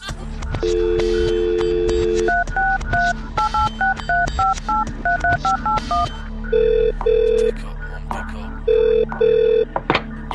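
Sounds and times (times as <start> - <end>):
low busy music: 0.0 - 10.3
telephone dial tone: 0.6 - 3.6, 4.4 - 7.5, 8.7 - 9.7.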